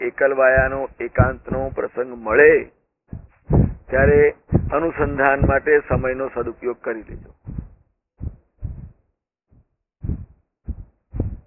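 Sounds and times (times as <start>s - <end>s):
speech: 0.1s - 2.8s, 3.5s - 7.4s
heartbeat thumps: 0.4s - 1.9s, 3.1s - 11.4s.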